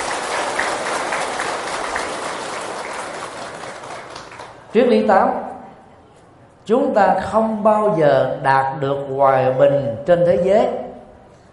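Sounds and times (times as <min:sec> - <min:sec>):
audience applause: 0:00.0 - 0:04.7
speech: 0:04.7 - 0:05.5, 0:06.7 - 0:10.8.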